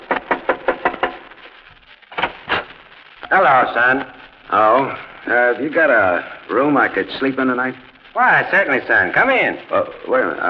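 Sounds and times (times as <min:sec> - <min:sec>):
knocking on a farmhouse door: 0:00.0 - 0:01.2
speech: 0:03.3 - 0:10.4.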